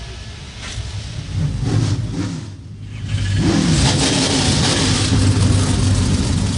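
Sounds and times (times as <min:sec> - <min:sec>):
NASCAR Craftsman Truck Series race truck engines firing up and revving on the pit lane: 0:00.4 - 0:06.5.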